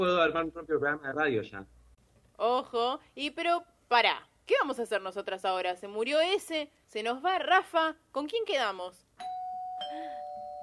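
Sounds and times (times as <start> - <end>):
speech: 0.0 - 1.8, 2.4 - 9.3
doorbell chiming: 9.2 - 10.6.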